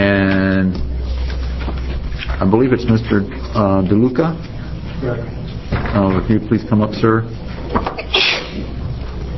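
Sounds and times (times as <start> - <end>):
quiet noise at a legislative committee public hearing: 0.0 - 9.3
speech: 2.4 - 5.4, 6.0 - 8.0
person sneezing at a legislative committee public hearing: 8.0 - 8.7.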